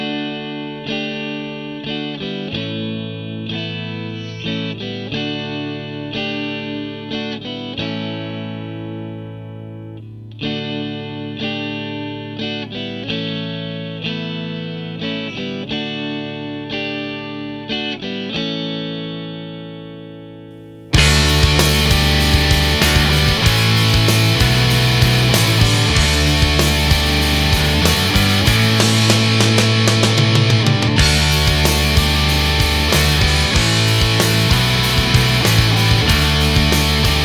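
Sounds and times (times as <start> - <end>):
layered distorted electric guitars playing a slow rock intro: 0.0 - 37.2.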